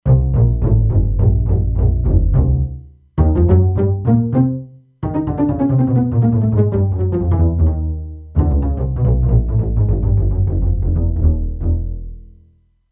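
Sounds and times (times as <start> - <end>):
E-mu Proteus-2 synthesizer pizzicato bass factory preset: 0.0 - 12.6.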